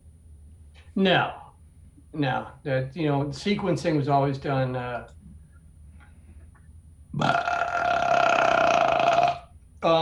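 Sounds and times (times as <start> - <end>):
speech: 1.0 - 1.4, 2.1 - 5.2, 7.2 - 7.4, 9.8 - 10.0
long loud rough resonant belch: 7.2 - 9.5.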